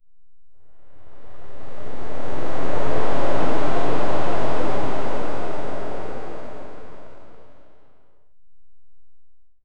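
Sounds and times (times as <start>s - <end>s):
soft wind based whoosh: 1.0s - 7.8s.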